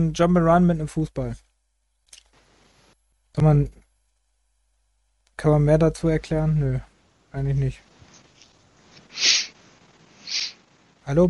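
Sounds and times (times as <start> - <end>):
speech: 0.0 - 1.4, 3.4 - 3.8, 5.4 - 7.9, 11.1 - 11.2
breathy sniffing through the nose: 9.0 - 9.6.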